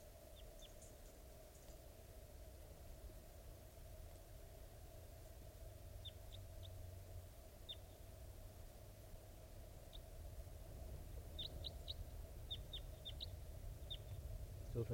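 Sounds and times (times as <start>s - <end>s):
wild birds chirping: 0.0s - 1.9s, 5.8s - 8.2s, 9.5s - 14.9s
broadband noise: 0.0s - 14.9s
steady low hum: 0.0s - 14.9s.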